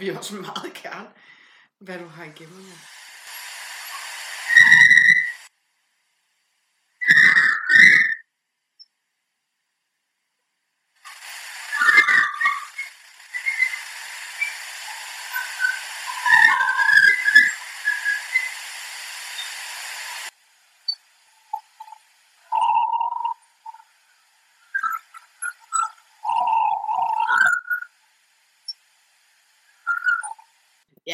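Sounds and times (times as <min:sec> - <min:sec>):
speech: 0:00.0 - 0:03.0
harsh raspy shrieks: 0:02.5 - 0:05.5, 0:07.0 - 0:08.3, 0:11.0 - 0:28.0, 0:29.7 - 0:30.5
clear fluting whistle-like notes in a melody: 0:03.9 - 0:05.4, 0:07.0 - 0:08.2, 0:11.6 - 0:18.6, 0:24.7 - 0:27.9.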